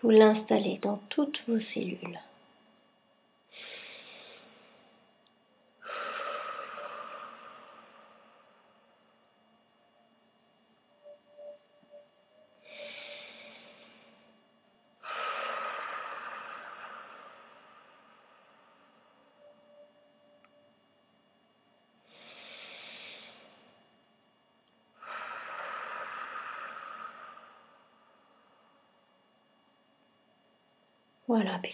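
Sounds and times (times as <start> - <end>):
speech: 0.0 - 2.3, 31.3 - 31.7
slow deep breathing during a guided breathing exercise: 3.5 - 5.1, 5.8 - 9.2, 11.0 - 20.4, 22.1 - 23.8, 25.0 - 29.0.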